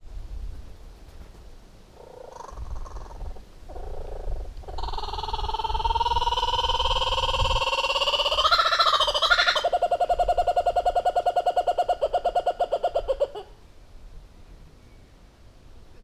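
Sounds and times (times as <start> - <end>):
wind blowing: 0.0 - 16.0
laughing kookaburra calling at Veszprém Zoo: 4.8 - 13.5.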